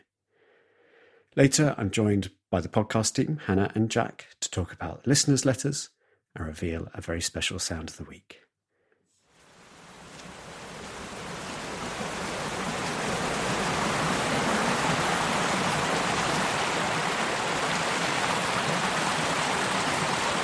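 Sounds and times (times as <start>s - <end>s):
speech: 1.3s - 8.5s
little trickling stream running down from the central highland: 9.4s - 20.4s.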